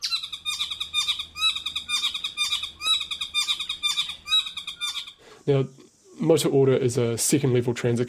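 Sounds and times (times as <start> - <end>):
male saddleback singing on Motuora Island: 0.0 - 5.2
faint low hum: 0.0 - 8.0
speech: 5.5 - 8.0.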